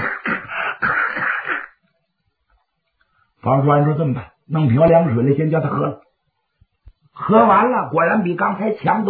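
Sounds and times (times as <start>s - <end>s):
voice mimicking a person coughing: 0.0s - 1.8s
speech: 3.4s - 6.1s, 7.2s - 9.0s.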